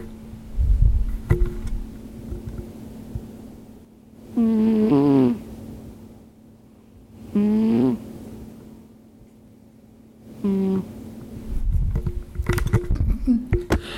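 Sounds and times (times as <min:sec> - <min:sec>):
microphone handling and soft rustling: 0:00.0 - 0:03.3, 0:11.4 - 0:13.9
little gray cat snoring while sleeping: 0:04.3 - 0:05.4, 0:07.3 - 0:08.0, 0:10.4 - 0:10.9.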